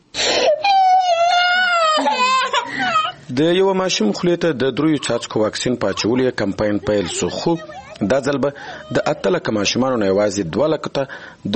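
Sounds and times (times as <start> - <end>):
young child crying in high wavering wails: 0.3 - 3.2, 6.9 - 9.4
laughter: 1.8 - 3.3, 4.6 - 10.0
speech: 3.3 - 11.5.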